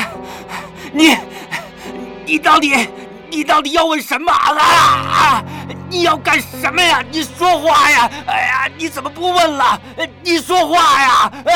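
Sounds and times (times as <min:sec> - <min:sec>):
person panting heavily in distress: 0:00.0 - 0:02.2, 0:05.4 - 0:05.8
speech: 0:00.9 - 0:01.3, 0:02.3 - 0:11.5.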